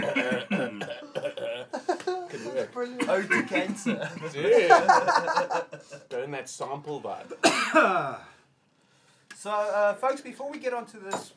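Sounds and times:
harsh raspy coughing: 0:00.0 - 0:01.9, 0:03.0 - 0:04.1, 0:07.3 - 0:08.3
laughter: 0:01.2 - 0:06.1
speech: 0:02.8 - 0:08.3, 0:09.4 - 0:11.3.

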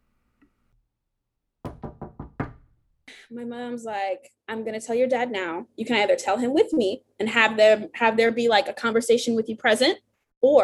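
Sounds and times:
quick firm knocks on a door: 0:01.6 - 0:02.8
speech: 0:03.2 - 0:10.6.

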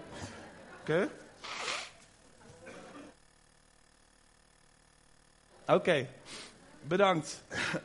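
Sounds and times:
speech: 0:00.8 - 0:01.6, 0:05.7 - 0:07.8
breathy nose blowing: 0:01.4 - 0:02.0.

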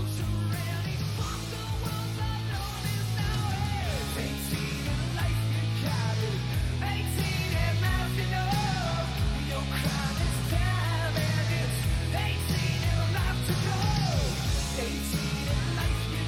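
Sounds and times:
loud hair metal rock song with full band: 0:00.0 - 0:16.2.

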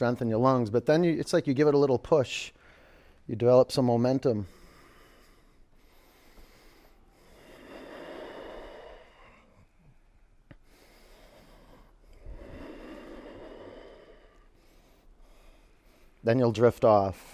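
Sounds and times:
speech: 0:00.0 - 0:02.6, 0:03.3 - 0:04.6, 0:16.2 - 0:17.3
breaths drawn in through a narrowed throat: 0:04.4 - 0:16.3.

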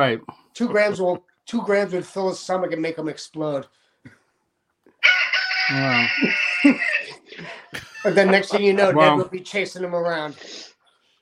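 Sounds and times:
speech: 0:00.0 - 0:04.2, 0:05.7 - 0:10.7
pet bird squawking: 0:05.3 - 0:07.2
laughter: 0:05.8 - 0:09.3
low voice: 0:08.8 - 0:09.3.

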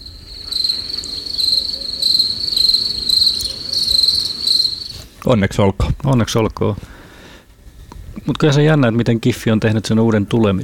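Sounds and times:
crickets chirping: 0:00.0 - 0:05.2
faint hiss: 0:00.0 - 0:10.6
speech: 0:05.2 - 0:06.9, 0:08.2 - 0:10.6.

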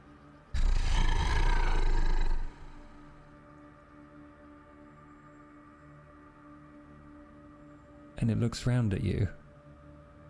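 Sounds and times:
deep dog growl on a cobbled street: 0:00.6 - 0:03.3
speech: 0:08.2 - 0:09.4.

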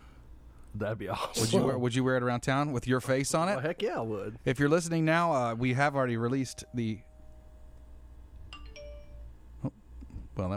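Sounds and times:
steady low hum: 0:00.0 - 0:10.5
speech: 0:00.8 - 0:07.1, 0:10.4 - 0:10.5
phone ding: 0:06.3 - 0:09.4
doorbell two-note chime: 0:06.4 - 0:09.3.

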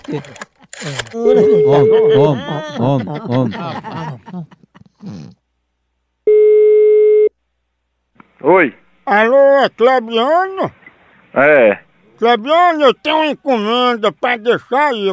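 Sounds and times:
laughter: 0:00.0 - 0:05.4
speech: 0:00.1 - 0:05.3, 0:08.4 - 0:10.8, 0:11.4 - 0:15.1
telephone call tone while dialling: 0:01.2 - 0:02.4, 0:06.3 - 0:07.3.

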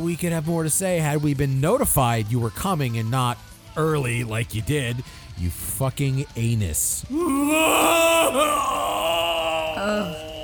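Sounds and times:
speech: 0:00.0 - 0:08.9
man wailing in a loud drawn-out ugly cry: 0:07.1 - 0:10.4.

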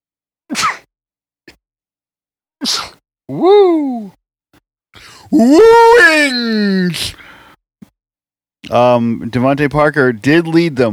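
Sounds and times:
person sneezing: 0:00.5 - 0:00.9, 0:02.6 - 0:03.0, 0:06.8 - 0:07.2
speech: 0:02.6 - 0:04.2, 0:05.3 - 0:07.2, 0:08.7 - 0:10.9.

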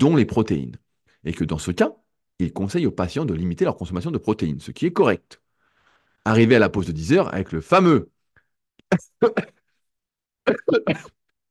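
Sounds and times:
speech: 0:00.0 - 0:05.4, 0:06.2 - 0:08.1, 0:08.9 - 0:09.6, 0:10.4 - 0:11.2
harsh coughing: 0:08.9 - 0:09.8, 0:10.4 - 0:11.3.

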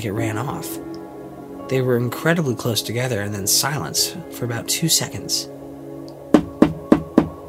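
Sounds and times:
speech: 0:00.0 - 0:01.0, 0:01.7 - 0:05.7
sharp knocks on a door: 0:06.3 - 0:07.4.

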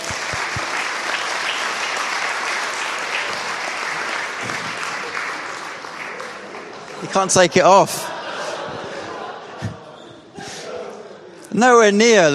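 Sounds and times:
audience applause: 0:00.0 - 0:08.0
laughter: 0:06.3 - 0:11.4
speech: 0:07.1 - 0:08.1, 0:11.6 - 0:12.3.

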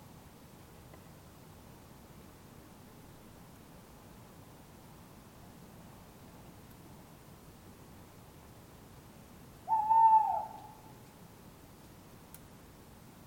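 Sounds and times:
faint tick: 0:00.9 - 0:01.2, 0:06.4 - 0:06.8, 0:12.3 - 0:12.5
tawny owl calling in Surrey England: 0:09.6 - 0:11.0.

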